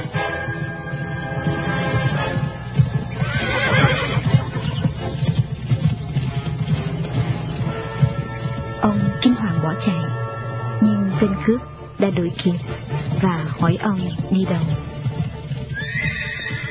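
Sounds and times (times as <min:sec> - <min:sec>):
horse hooves clopping: 0:00.0 - 0:16.6
horse neighing: 0:03.2 - 0:04.8, 0:15.7 - 0:16.6
speech: 0:11.5 - 0:14.9.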